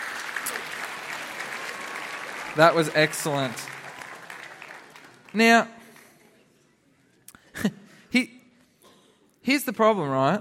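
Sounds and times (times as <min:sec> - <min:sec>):
audience applause: 0:00.0 - 0:06.2
speech: 0:02.6 - 0:03.8, 0:05.3 - 0:05.8, 0:07.6 - 0:08.4, 0:09.5 - 0:10.4.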